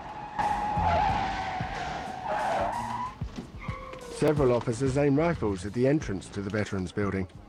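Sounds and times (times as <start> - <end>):
police car engine: 0.0 - 4.3
police car tires squealing as it skids to a stop: 0.0 - 4.4
speech: 4.2 - 7.4.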